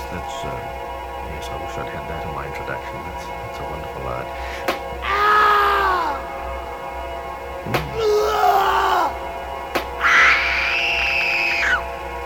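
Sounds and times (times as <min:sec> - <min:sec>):
person screaming and groaning: 0:05.0 - 0:06.3, 0:07.7 - 0:09.2, 0:10.0 - 0:11.8
sharp slap-like cracks: 0:07.7 - 0:08.0, 0:09.7 - 0:10.0.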